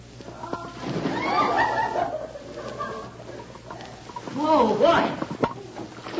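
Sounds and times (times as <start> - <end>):
water sloshing and churning: 0.5 - 6.1
splash of a man jumping into water: 0.8 - 1.8
laughter: 1.0 - 4.0
speech: 4.6 - 5.1.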